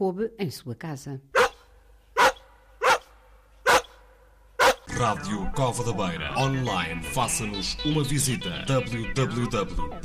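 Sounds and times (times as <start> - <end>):
speech: 0.0 - 1.4, 5.0 - 10.0
dog barking: 1.3 - 4.9.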